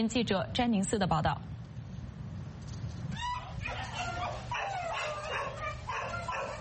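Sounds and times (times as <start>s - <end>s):
speech: 0.0s - 1.6s
several abandoned dogs barking and yelping at an animal shelter in Taiwan: 3.1s - 6.5s.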